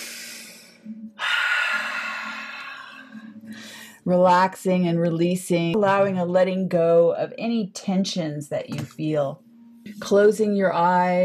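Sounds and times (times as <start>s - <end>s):
deep deliberate breathing during a guided relaxation exercise: 0.0s - 4.0s
speech: 4.1s - 9.4s, 10.0s - 11.2s.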